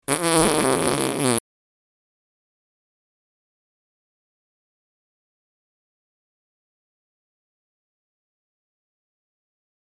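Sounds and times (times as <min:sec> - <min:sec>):
farting: 0:00.0 - 0:01.4.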